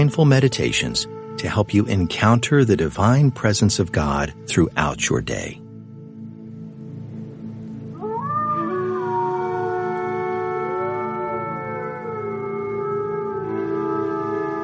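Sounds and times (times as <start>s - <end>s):
speech: 0.0s - 5.6s
pack of wolves howling in chorus: 7.9s - 14.6s.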